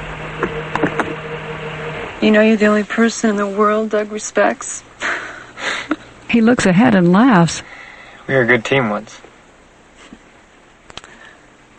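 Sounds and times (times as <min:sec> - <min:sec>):
car engine idling: 0:00.0 - 0:03.3
noise: 0:00.0 - 0:11.7
speech: 0:02.2 - 0:04.9, 0:06.3 - 0:07.7, 0:08.3 - 0:09.3.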